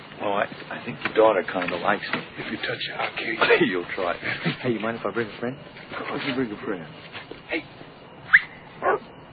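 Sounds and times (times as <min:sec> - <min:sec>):
speech: 0:00.4 - 0:07.8
dog barking: 0:08.4 - 0:09.1
dog whimpering whine: 0:08.8 - 0:09.1.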